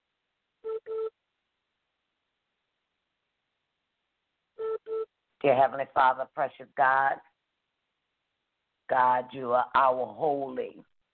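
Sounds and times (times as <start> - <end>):
telephone keypad tones: 0.6 - 1.1
speech: 5.4 - 7.3, 8.9 - 10.9.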